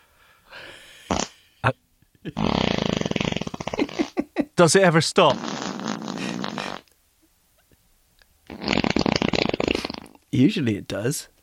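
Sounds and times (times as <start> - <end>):
speech: 1.6 - 2.8, 4.6 - 5.6, 10.4 - 11.4
loud raspy sputtering farts: 2.3 - 4.2, 5.3 - 6.9, 8.5 - 10.2.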